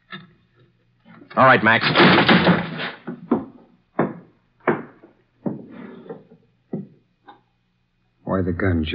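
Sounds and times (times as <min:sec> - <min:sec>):
speech: 0:01.4 - 0:02.5, 0:08.4 - 0:08.9
wooden door being kicked in: 0:01.8 - 0:05.6.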